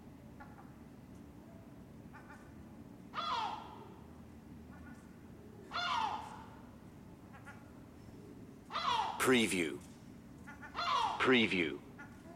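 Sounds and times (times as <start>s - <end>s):
low steady hum: 0.0s - 12.3s
seagulls crying in a city: 2.1s - 4.1s, 5.6s - 7.9s, 8.7s - 9.8s, 10.4s - 12.3s
speech: 9.3s - 9.9s, 11.2s - 11.8s.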